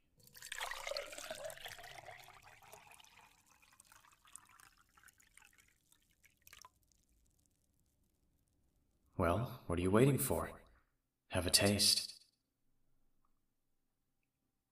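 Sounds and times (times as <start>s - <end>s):
tea poured into a cup in a steady stream: 0.2s - 8.4s
speech: 9.2s - 10.6s, 11.3s - 12.1s.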